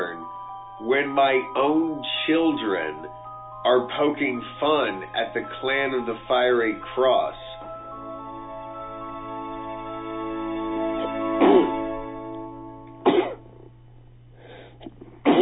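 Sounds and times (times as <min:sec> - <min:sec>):
steady low electrical hum: 0:00.0 - 0:15.4
speech: 0:00.8 - 0:07.5
person sneezing: 0:11.4 - 0:11.9, 0:13.1 - 0:13.4, 0:15.2 - 0:15.4.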